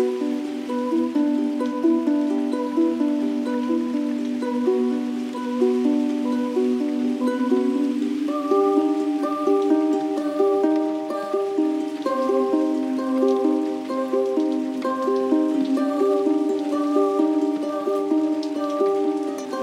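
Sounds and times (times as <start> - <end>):
gentle ukulele: 0.0 - 19.6
person singing a calm melody: 0.0 - 19.6
rain falling on a window in a remote village in Portugal: 0.0 - 19.6.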